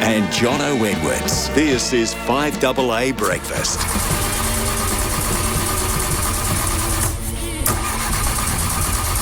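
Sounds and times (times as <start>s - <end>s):
speech: 0.1s - 4.3s
car engine cranking, struggling to start and idling rough: 3.3s - 9.2s.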